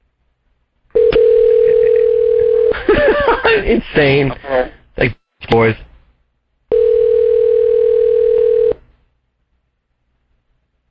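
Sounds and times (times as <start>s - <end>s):
telephone dial tone while dialing a call: 1.0s - 2.7s, 6.7s - 8.8s
laughter: 2.7s - 3.8s
speech: 3.6s - 5.9s.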